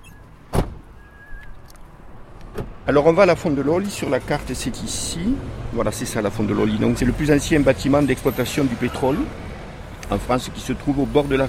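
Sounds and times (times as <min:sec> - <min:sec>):
heavy car door thunk as someone gets out of a car: 0:00.5 - 0:00.9
speech: 0:02.9 - 0:09.5, 0:10.1 - 0:11.4.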